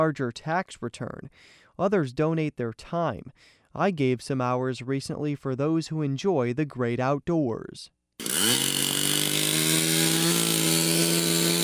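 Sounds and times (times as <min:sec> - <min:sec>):
speech: 0:00.0 - 0:08.3
chainsaw cutting wood in a forest: 0:08.2 - 0:11.6.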